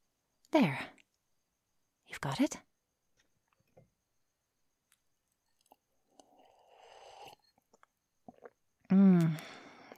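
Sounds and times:
speech: 0:00.5 - 0:01.0, 0:02.1 - 0:02.7, 0:08.9 - 0:09.6
sipping wine from a glass: 0:05.6 - 0:08.6
swallow: 0:05.6 - 0:09.9.

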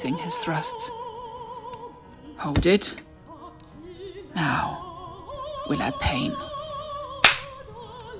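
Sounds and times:
speech: 0:00.0 - 0:01.0, 0:02.4 - 0:03.1, 0:04.4 - 0:04.8, 0:05.7 - 0:06.5
sharp loud slaps on skin: 0:07.2 - 0:07.6.

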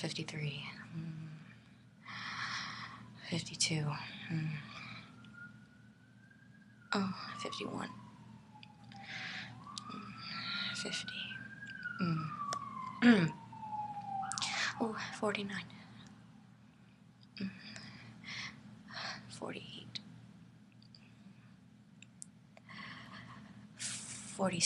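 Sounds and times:
speech: 0:00.0 - 0:01.4, 0:03.3 - 0:04.8, 0:06.9 - 0:08.0, 0:10.8 - 0:11.3, 0:12.0 - 0:12.4, 0:13.0 - 0:13.4, 0:14.8 - 0:15.8, 0:19.4 - 0:19.8, 0:24.4 - 0:24.6
breathy sounds: 0:02.1 - 0:03.1, 0:09.0 - 0:09.6, 0:17.7 - 0:19.2, 0:22.7 - 0:23.6
ambulance siren passing outside: 0:02.1 - 0:17.8.

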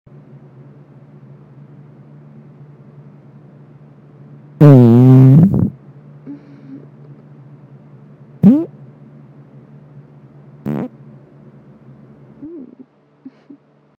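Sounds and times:
fart: 0:04.6 - 0:05.8, 0:08.4 - 0:08.7, 0:10.6 - 0:10.9.

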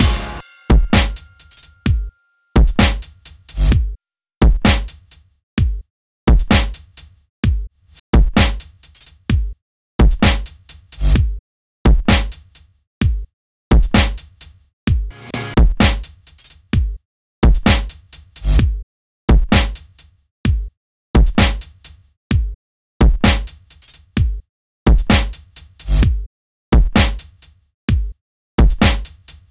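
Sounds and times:
chord: 0:00.0 - 0:02.4
drums: 0:00.0 - 0:29.4.

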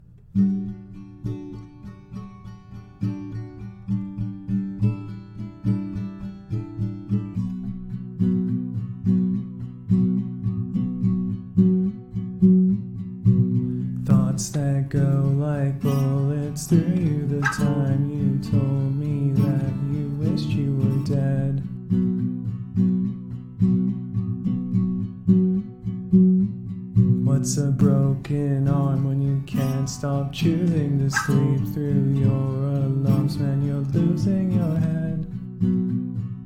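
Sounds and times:
acoustic guitar playing: 0:00.0 - 0:36.4
person singing a cover song: 0:14.0 - 0:21.8, 0:27.2 - 0:35.4.

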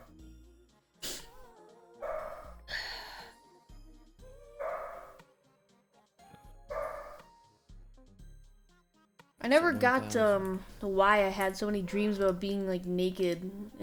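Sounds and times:
dog barking: 0:02.0 - 0:02.6, 0:04.5 - 0:05.2, 0:06.7 - 0:07.3
speech: 0:09.5 - 0:13.8.

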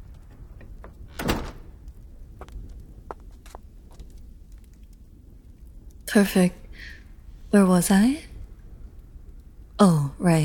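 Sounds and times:
low steady room hum: 0:00.0 - 0:10.4
door clicks and light knocks as it settles: 0:00.6 - 0:01.8
door swinging shut with a muffled thud: 0:00.8 - 0:01.8
speech: 0:06.1 - 0:08.3, 0:09.8 - 0:10.4.

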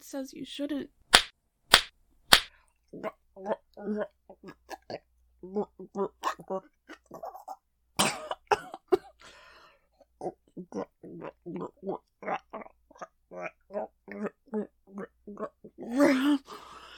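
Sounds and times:
speech: 0:00.1 - 0:01.0, 0:02.9 - 0:07.4, 0:10.2 - 0:16.7
sharp loud slaps on a person's face: 0:01.1 - 0:02.5.

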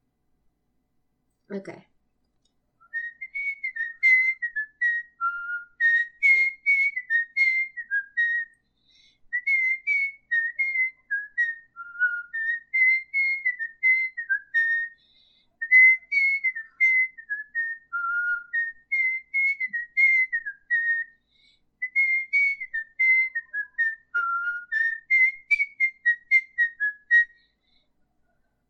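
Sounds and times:
speech: 0:01.5 - 0:01.9
person whistling a lively melody: 0:02.8 - 0:27.7.

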